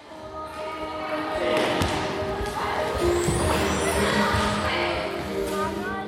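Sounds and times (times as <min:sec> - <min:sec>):
children's voices chattering and calling: 0:00.0 - 0:06.0
several balls thumping and bouncing during a children's ball session: 0:01.4 - 0:04.8.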